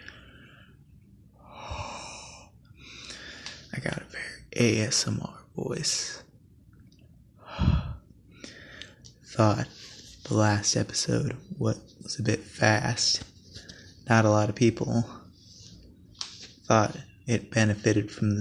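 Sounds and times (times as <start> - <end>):
airy ASMR breathing into the microphone: 1.4 - 3.7, 7.4 - 9.0
speech: 4.6 - 6.2, 9.4 - 13.3, 14.1 - 15.2, 16.7 - 18.4.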